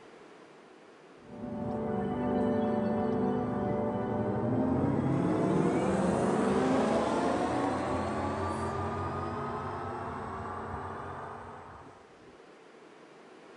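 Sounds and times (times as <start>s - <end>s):
synthesized electric car driving sound with layered rising harmonic hum: 1.3s - 12.0s.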